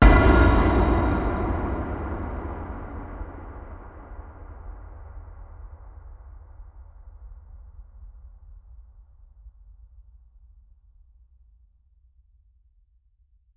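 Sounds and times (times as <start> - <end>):
distant hit: 0.0 - 4.8.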